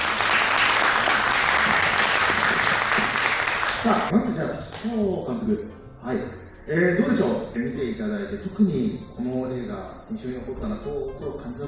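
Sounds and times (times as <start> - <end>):
sustained applause from a sizable audience: 0.0 - 4.1
speech: 3.8 - 11.6.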